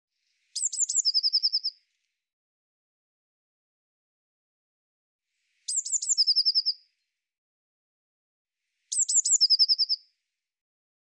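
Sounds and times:
Eurasian blue tit calling: 0.6s - 1.7s, 5.7s - 6.8s, 8.9s - 10.0s.

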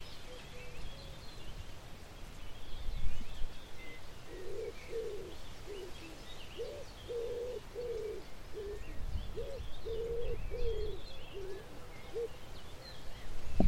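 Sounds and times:
faint bird chirps: 0.0s - 13.6s
common wood pigeon cooing: 4.2s - 12.5s.

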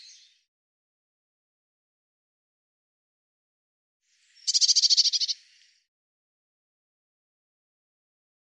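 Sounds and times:
Eurasian blue tit giving a scolding churr: 4.5s - 5.4s.

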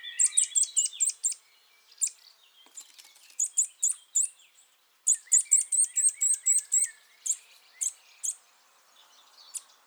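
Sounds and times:
Eurasian nuthatch Sitta europaea giving loud sharp high calls: 0.2s - 1.4s, 5.1s - 8.4s.

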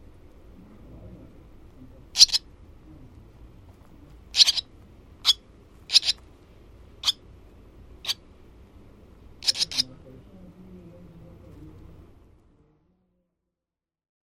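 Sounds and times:
barn swallow chirps: 2.2s - 2.4s, 4.4s - 6.2s, 9.4s - 9.9s.

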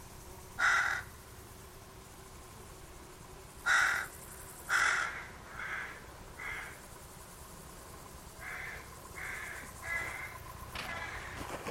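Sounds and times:
bird giving harsh raspy cawing calls: 0.6s - 1.2s, 3.6s - 6.8s, 8.4s - 11.7s.

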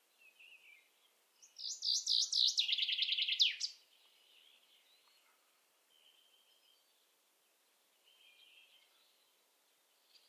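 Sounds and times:
common chaffinch song: 0.0s - 10.2s.

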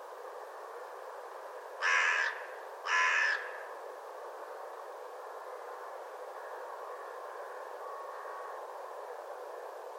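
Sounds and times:
steady low hiss: 0.0s - 9.9s
harsh hoarse caw-like bird calls: 1.8s - 3.7s.

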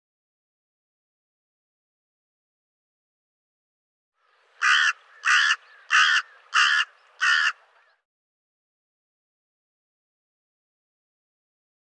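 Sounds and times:
bird cawing: 4.4s - 8.0s.

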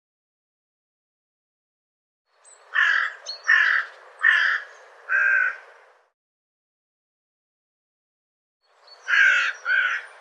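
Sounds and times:
bird cawing: 2.7s - 5.8s, 9.0s - 10.1s.

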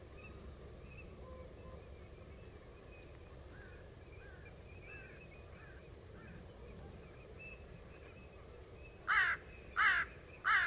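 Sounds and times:
faint background hiss: 0.0s - 10.6s
bird harsh caws: 9.1s - 10.6s.

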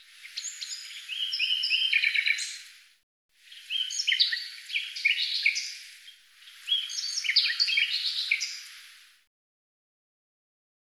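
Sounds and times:
bird singing with quick high chirps and whistles: 0.2s - 2.6s, 3.5s - 5.9s, 6.5s - 8.8s.

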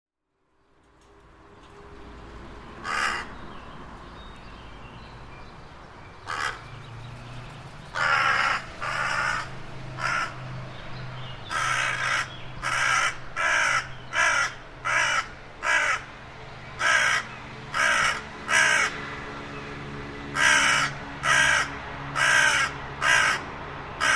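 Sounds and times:
bird cawing: 2.8s - 3.4s, 6.2s - 6.8s, 7.9s - 10.4s, 11.4s - 16.1s, 16.8s - 19.0s, 20.3s - 24.1s.

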